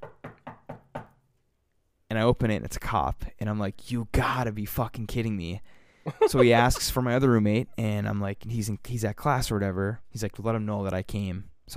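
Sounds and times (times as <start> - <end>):
firm knocking on a wooden door: 0.0 - 1.1
speech: 2.1 - 11.7.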